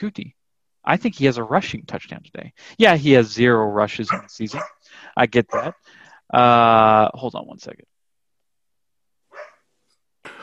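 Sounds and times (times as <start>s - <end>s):
speech: 0.0s - 7.9s
dog barking: 4.1s - 4.8s, 5.5s - 5.8s, 9.3s - 9.6s.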